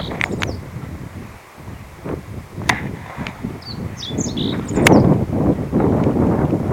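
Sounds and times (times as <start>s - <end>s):
meadow bunting quick high twittering phrase: 0.0s - 0.6s, 3.6s - 5.1s
gusting wind: 0.0s - 6.7s.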